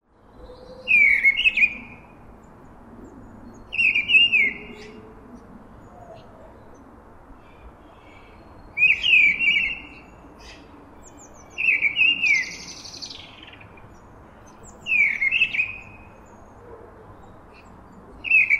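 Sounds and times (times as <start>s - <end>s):
mistle thrush: 0.6s - 2.0s, 3.4s - 5.0s, 7.4s - 16.6s, 17.6s - 18.5s.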